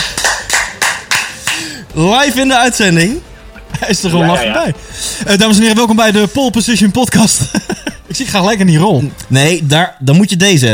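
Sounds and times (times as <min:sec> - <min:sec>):
applause of sharp claps: 0:00.0 - 0:01.8
speech: 0:02.0 - 0:10.7
laughter: 0:03.4 - 0:04.8, 0:07.0 - 0:08.3.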